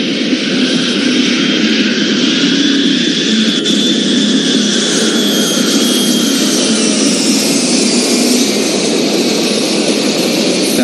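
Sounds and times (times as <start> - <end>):
four-engine airplane roaring on takeoff: 0.0 - 10.8.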